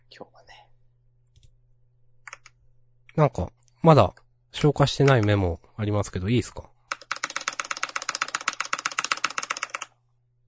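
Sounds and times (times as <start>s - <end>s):
typing on a newly bought computer keyboard: 2.3s - 2.6s, 6.9s - 9.9s
speech: 3.2s - 6.7s.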